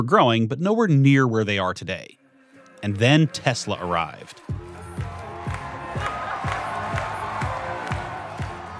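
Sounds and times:
speech: 0.0 - 2.2, 2.8 - 5.1
large crowd cheering and shouting at a factory opening event: 2.8 - 8.7
steady thumping beat: 4.5 - 8.7.

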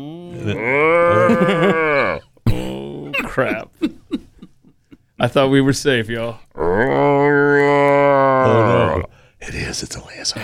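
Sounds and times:
speech: 0.0 - 1.8, 3.4 - 3.9, 5.2 - 7.4, 8.5 - 10.4
cow mooing: 0.4 - 2.3, 6.6 - 9.1
laughter: 0.4 - 5.5.

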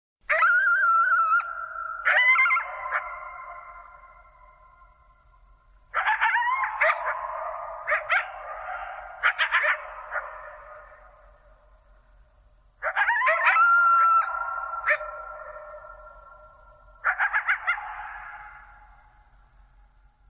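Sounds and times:
two coyotes howling and yipping: 0.3 - 11.8, 12.8 - 19.4.

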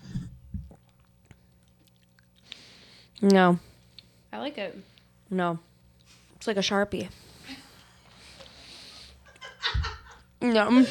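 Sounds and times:
person chewing sour gummy candy: 0.6 - 4.1
speech: 3.2 - 3.7, 4.4 - 5.7, 6.4 - 7.2, 10.4 - 10.8.

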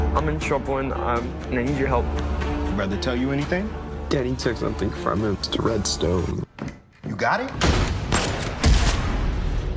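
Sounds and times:
speech: 0.2 - 7.8
rapid burst of gunshots: 7.6 - 9.6.

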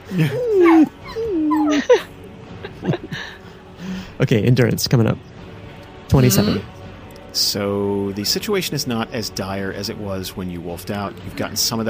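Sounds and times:
laughter: 0.0 - 3.4
speech: 0.1 - 0.9, 4.2 - 5.4, 6.1 - 6.8, 7.4 - 11.8
person imitating a whimpering and yelping puppy: 0.2 - 2.0.

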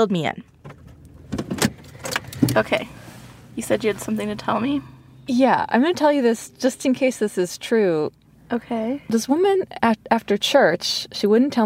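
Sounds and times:
speech: 0.0 - 0.5, 2.5 - 3.0, 3.6 - 11.6
clunks of car seat and door: 0.6 - 4.5
rustles from people climbing into a car: 0.7 - 4.6.

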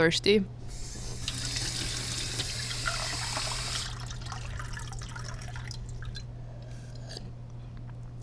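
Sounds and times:
speech: 0.0 - 0.6
low steady hum: 0.0 - 8.2
tap water running from a kitchen faucet: 0.6 - 6.3
scattered water drips and light splashes: 1.2 - 6.3.

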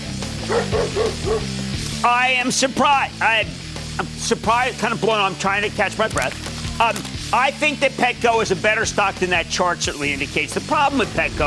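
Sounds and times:
dog barking in short sharp woofs: 0.4 - 1.5
speech: 0.5 - 11.4.

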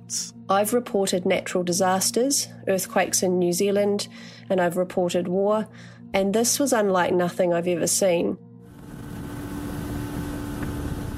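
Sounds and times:
speech: 0.1 - 8.5
boat engine drone travelling on rough sea: 8.6 - 11.1.

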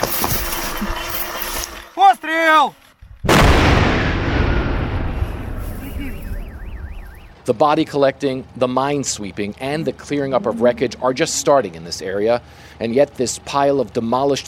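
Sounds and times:
speech: 2.0 - 3.6, 7.4 - 14.4
controlled detonation of unexploded bombs: 3.1 - 7.2.

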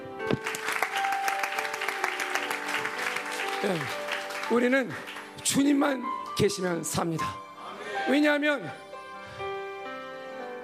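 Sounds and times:
audience applause in a reverberant room: 0.4 - 5.7
speech: 3.6 - 7.4, 8.0 - 8.8.

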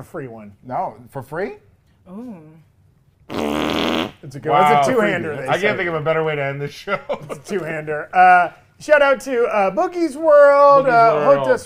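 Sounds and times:
speech: 0.0 - 2.7, 3.3 - 11.6
loud sputtering raspberry-like burst: 3.3 - 4.2
voice making a wavering droning fart imitation: 3.3 - 4.2.

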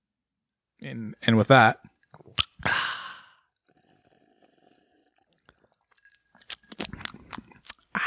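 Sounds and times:
speech: 0.8 - 1.9
wet clicky gulping and swallowing: 1.8 - 8.0
person slurping a cold soda: 2.0 - 8.0.

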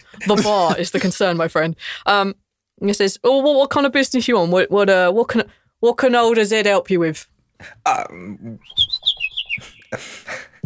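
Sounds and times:
speech: 0.1 - 8.9, 9.6 - 10.6
bird's rapid high-pitched warbling chirp: 8.6 - 10.0
bird squawking: 8.7 - 10.0.

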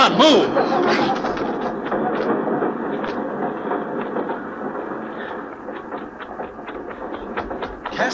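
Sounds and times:
speech: 0.0 - 1.3
laughter: 0.0 - 2.2
steam train hissing at a station: 0.0 - 8.1.

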